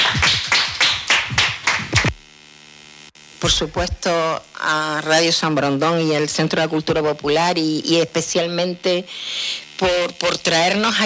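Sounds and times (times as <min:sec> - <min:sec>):
audience applause: 0:00.0 - 0:02.1
speech: 0:03.4 - 0:11.0.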